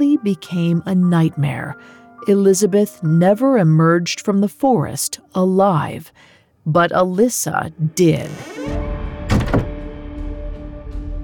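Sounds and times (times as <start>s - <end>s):
speech: 0.0s - 8.9s
bedroom door being shut quickly: 8.4s - 9.9s.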